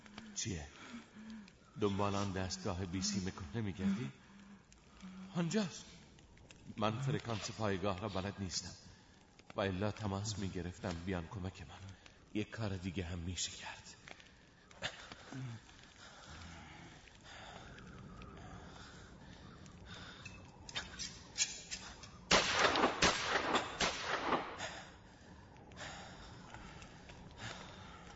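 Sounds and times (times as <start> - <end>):
breathy noises: 0.0 - 22.3, 23.7 - 28.1
speech: 0.4 - 4.2, 5.0 - 6.0, 6.7 - 8.9, 9.5 - 14.0, 14.8 - 15.7
gunshots fired as a signal to bring help: 22.3 - 24.8.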